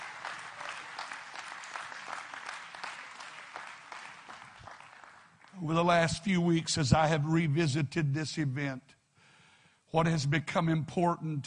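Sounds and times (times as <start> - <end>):
large group clapping hands: 0.0 - 6.2
speech: 5.6 - 9.0, 9.9 - 11.4.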